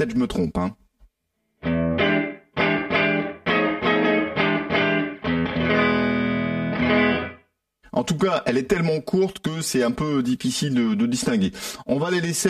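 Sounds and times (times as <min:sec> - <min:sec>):
speech: 0:00.0 - 0:00.8, 0:08.0 - 0:12.4
distorted electric guitar chords through an amp with room reverb: 0:01.6 - 0:07.5.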